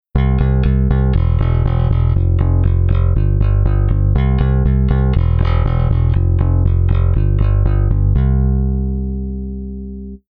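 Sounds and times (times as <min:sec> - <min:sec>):
bass guitar played through front pickup: 0:00.0 - 0:10.3.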